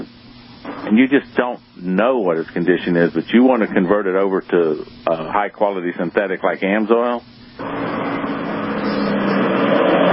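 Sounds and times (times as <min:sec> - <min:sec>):
speech: 0:00.9 - 0:07.8
road traffic passing in the background: 0:07.6 - 0:10.1.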